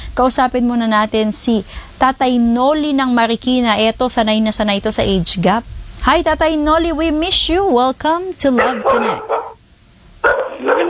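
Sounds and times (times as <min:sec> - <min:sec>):
speech: 0:00.2 - 0:09.5, 0:10.6 - 0:10.8
dog barking over a phone line: 0:08.5 - 0:09.6, 0:10.2 - 0:10.8.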